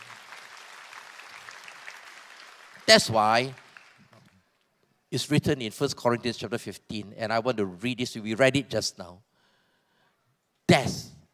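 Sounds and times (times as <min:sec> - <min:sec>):
church congregation clapping: 0:00.0 - 0:04.6
speech: 0:02.9 - 0:03.6, 0:05.1 - 0:09.3, 0:10.7 - 0:11.1.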